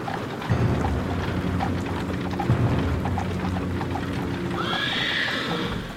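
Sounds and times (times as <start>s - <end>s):
low rumbling background of a rolling carriage: 0.0s - 5.0s
horse-drawn carriage hooves clopping: 0.0s - 5.9s
horse neighing: 1.4s - 5.9s.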